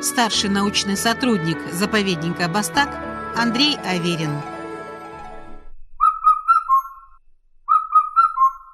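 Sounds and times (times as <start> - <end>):
speech: 0.0 - 4.6
Indian cuckoo calling a whistled four-note phrase: 6.0 - 8.7.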